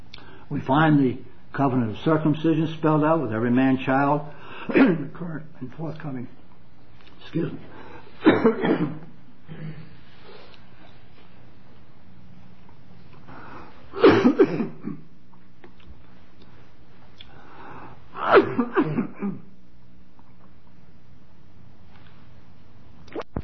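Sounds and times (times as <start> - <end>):
speech: 0.5 - 6.4, 7.2 - 9.8, 14.2 - 15.0, 18.3 - 19.5
person coughing harshly while pausing a Bible reading: 4.7 - 5.1, 8.2 - 9.9, 13.9 - 15.1, 18.2 - 19.5.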